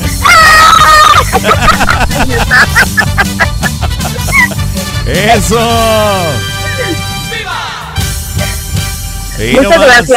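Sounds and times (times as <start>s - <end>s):
excited shouts: 0.2s - 1.5s
joyful scream of a contest winner: 0.2s - 1.5s
laughter: 0.3s - 4.7s, 6.5s - 7.1s
speech: 5.2s - 6.5s, 9.4s - 10.1s.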